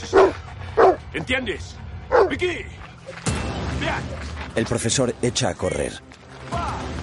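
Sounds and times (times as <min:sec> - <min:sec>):
guard dog barking while chasing a fleeing man: 0:00.0 - 0:01.0, 0:02.1 - 0:02.4
speech: 0:01.2 - 0:06.6.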